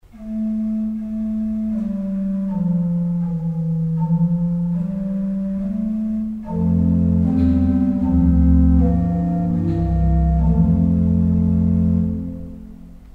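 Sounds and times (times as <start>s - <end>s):
borduna: 0.0s - 13.1s.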